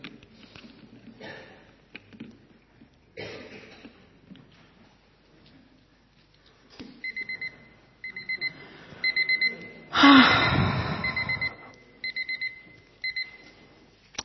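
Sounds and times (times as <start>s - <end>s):
alarm clock beeping in quick bursts: 7.0s - 9.9s, 10.8s - 13.4s.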